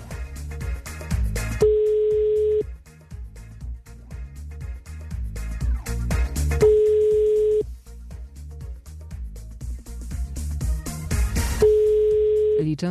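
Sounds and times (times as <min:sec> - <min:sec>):
music-like sounds: 0:00.0 - 0:12.9
telephone ringback tone while calling a listener: 0:01.6 - 0:02.6, 0:06.6 - 0:07.6, 0:11.6 - 0:12.8.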